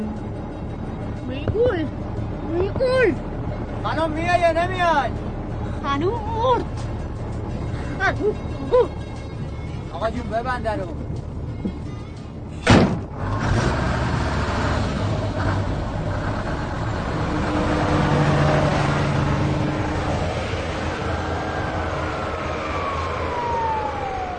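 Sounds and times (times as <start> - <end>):
bus engine rumbling as the bus pulls away: 0.0 - 24.3
speech: 1.5 - 5.2, 5.8 - 7.0, 8.0 - 9.1, 10.0 - 11.0
sharp knock: 12.6 - 13.1
faint high tone sliding downward: 17.6 - 24.3.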